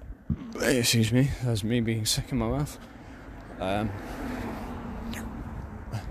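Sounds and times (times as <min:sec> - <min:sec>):
speech: 0:00.6 - 0:03.0, 0:03.6 - 0:04.4
car driving past with road noise: 0:02.8 - 0:06.0.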